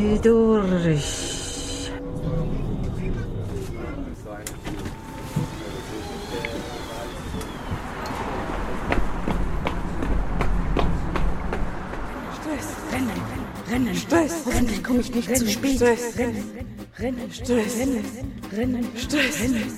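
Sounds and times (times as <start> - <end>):
speech: 0.0 - 1.4, 13.7 - 19.7
vehicle-like hum: 0.0 - 15.9
quick running footsteps: 7.7 - 12.4.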